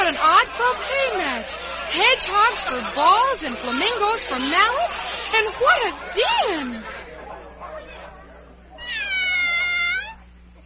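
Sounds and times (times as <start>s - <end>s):
laughter: 0.0s - 8.1s
talking: 0.0s - 10.6s
speech: 0.1s - 7.0s
cat meowing: 8.8s - 10.6s.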